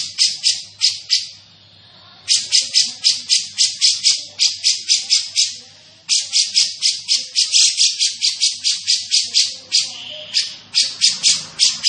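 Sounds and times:
grey-cheeked bulbul giving harsh buzzy chattering notes: 0.0 - 1.5, 2.2 - 11.8
faint low hum: 0.0 - 11.8.

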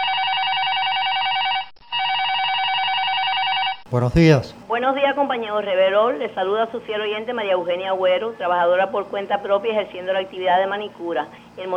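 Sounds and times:
telephone ringing with an incoming call in a radio studio: 0.0 - 3.8
speech: 3.9 - 11.7.

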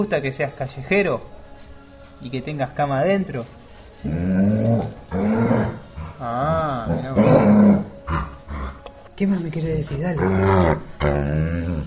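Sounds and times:
speech: 0.0 - 1.4, 2.2 - 4.9, 9.2 - 11.8
dog growling: 4.0 - 8.9, 10.0 - 11.8.

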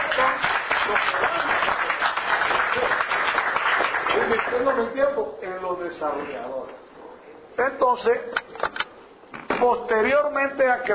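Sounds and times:
audience applause at a business seminar: 0.0 - 4.7
speech: 4.7 - 6.8, 7.6 - 8.4, 9.6 - 10.9.

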